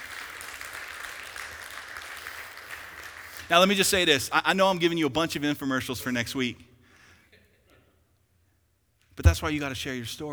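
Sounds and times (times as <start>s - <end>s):
audience applause: 0.0s - 3.5s
speech: 3.5s - 6.7s, 9.2s - 10.3s.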